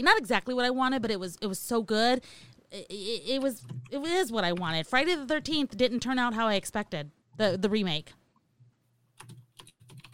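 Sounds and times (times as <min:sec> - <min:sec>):
speech: 0:00.0 - 0:08.2
typing on a computer keyboard: 0:03.3 - 0:04.8, 0:09.2 - 0:10.1.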